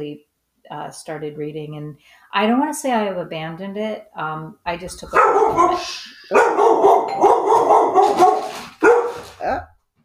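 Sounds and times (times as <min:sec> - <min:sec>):
speech: 0:00.0 - 0:07.3, 0:07.9 - 0:08.4
dogs barking at a ringing doorbell: 0:05.1 - 0:09.7.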